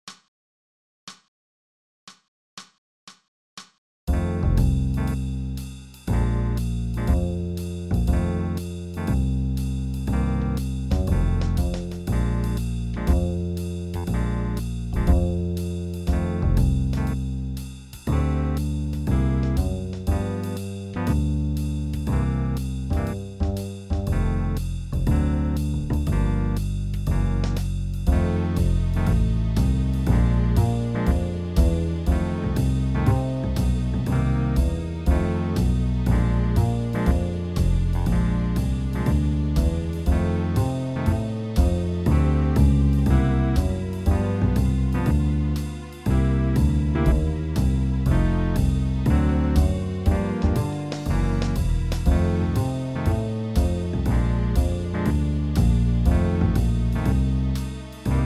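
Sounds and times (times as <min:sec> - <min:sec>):
blues piano: 0:04.2 - 0:05.3, 0:06.1 - 0:57.6.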